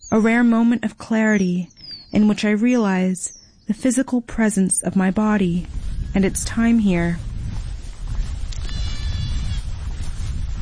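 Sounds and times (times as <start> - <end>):
speech: 0.1 - 7.3
low rumble of wind on open ground: 1.9 - 10.6
goat bleating on a hill: 8.6 - 9.7.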